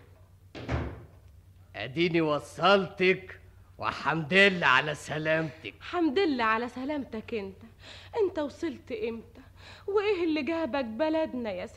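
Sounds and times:
door being pushed shut: 0.5s - 1.2s
speech: 1.8s - 11.7s.

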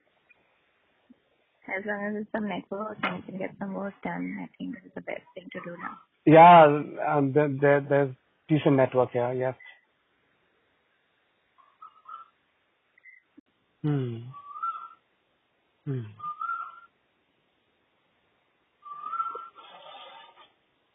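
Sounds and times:
speech: 1.7s - 9.7s, 13.8s - 14.4s, 15.9s - 16.2s
faint birds chirping outdoors beside the sea: 11.6s - 12.4s, 13.0s - 13.4s, 14.3s - 15.0s, 15.9s - 16.9s, 18.8s - 20.1s
person humming: 13.8s - 14.4s, 15.9s - 16.2s.

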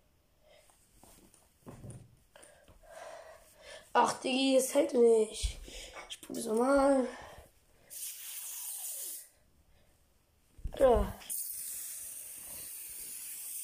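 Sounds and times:
speech: 4.0s - 7.2s
aerosol spray can hissing: 7.9s - 9.4s, 11.2s - 13.6s.

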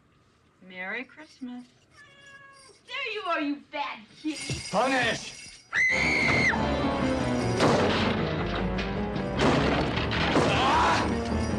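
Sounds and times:
speech: 0.7s - 1.8s, 2.9s - 6.4s
front door splintering as a man smashes it in: 7.6s - 11.2s
person screaming: 10.5s - 11.1s.

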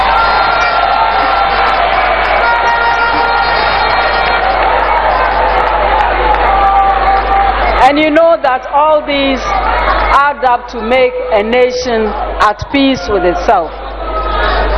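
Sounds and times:
large audience clapping: 0.0s - 7.8s
large audience cheering: 0.0s - 14.7s
speech: 8.0s - 13.9s.

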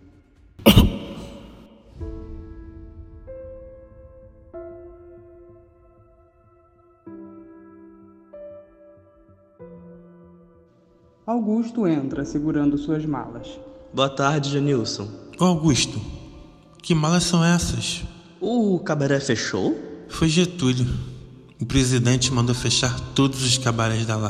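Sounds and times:
man coughing after falling to knees: 0.7s - 1.7s
speech: 11.3s - 16.2s, 16.8s - 24.2s.

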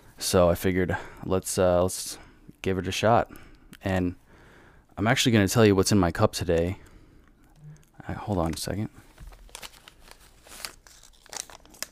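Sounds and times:
speech: 0.2s - 4.2s, 5.0s - 6.9s, 8.0s - 9.0s
small tea packet crinkling as pulled out of a breast pocket: 7.8s - 11.8s.

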